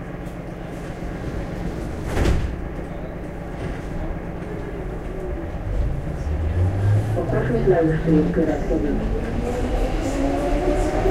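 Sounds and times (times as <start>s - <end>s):
steady low rumble of a train interior: 0.0s - 11.0s
train doors sliding shut with a sharp thud: 0.3s - 6.0s
speech: 7.6s - 9.5s.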